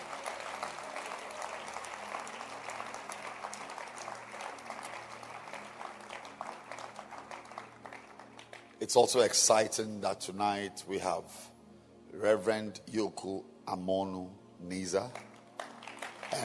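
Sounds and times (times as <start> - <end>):
large crowd clapping in a reverberant room: 0.0 - 9.1, 15.0 - 16.4
speech: 8.8 - 11.5, 12.2 - 15.3.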